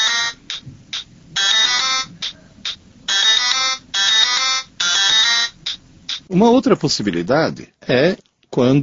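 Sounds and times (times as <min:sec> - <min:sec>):
mobile phone ringtone playing an electronic melody: 0:00.0 - 0:00.6, 0:01.4 - 0:02.4, 0:03.1 - 0:05.8
speech: 0:06.3 - 0:08.8.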